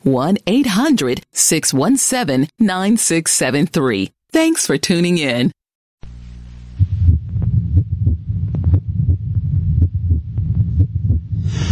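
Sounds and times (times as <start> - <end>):
speech: 0.0 - 5.6
deep low hum: 6.0 - 11.6
heartbeat: 6.7 - 11.6.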